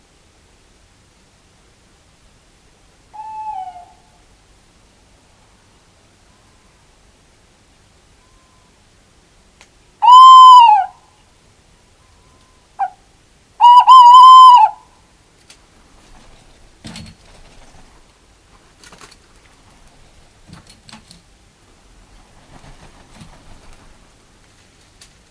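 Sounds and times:
tawny owl calling: 0:03.1 - 0:04.2, 0:10.0 - 0:11.0, 0:12.3 - 0:15.0.

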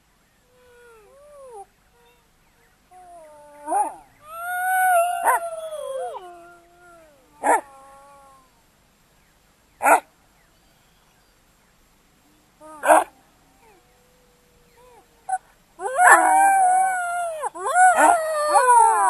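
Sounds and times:
Ethiopian wolf yelping, whining and howling: 0:03.0 - 0:08.4, 0:12.7 - 0:19.0.

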